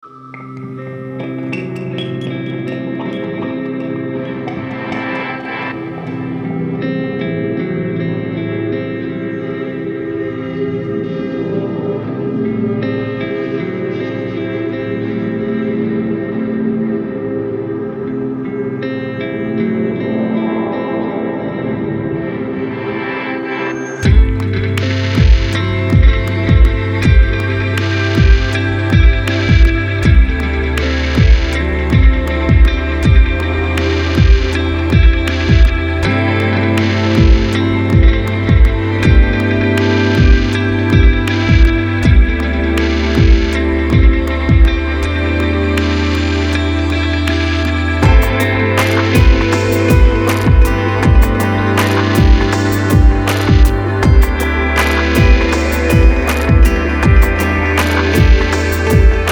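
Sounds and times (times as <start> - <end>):
soundscape guitars: 0.0 - 59.3.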